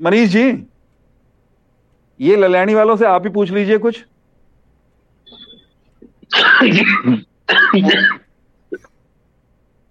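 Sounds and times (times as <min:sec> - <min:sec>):
speech: 0:00.0 - 0:00.7, 0:02.2 - 0:04.1, 0:06.3 - 0:08.9
man with a cold clearing throat and coughing: 0:06.3 - 0:09.0.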